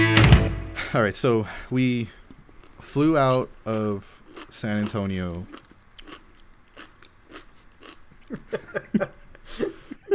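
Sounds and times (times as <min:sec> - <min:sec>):
quiet noise: 0:00.0 - 0:10.1
speech: 0:00.9 - 0:02.2, 0:02.8 - 0:05.6, 0:08.3 - 0:08.7
crunching and chewing food: 0:02.3 - 0:08.5
laughter: 0:08.3 - 0:10.1.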